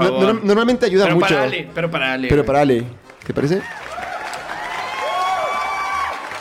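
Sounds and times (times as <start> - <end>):
speech: 0.3 - 3.8
crowd applauding: 3.0 - 6.4
crowd cheering: 3.4 - 6.4.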